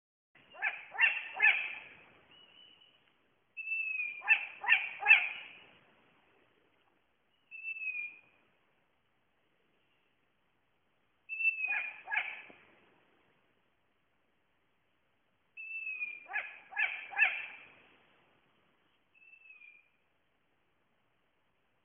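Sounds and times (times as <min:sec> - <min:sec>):
British bird calling: 0:00.4 - 0:05.7, 0:07.3 - 0:08.4, 0:11.3 - 0:12.6, 0:15.6 - 0:17.7, 0:19.1 - 0:20.0.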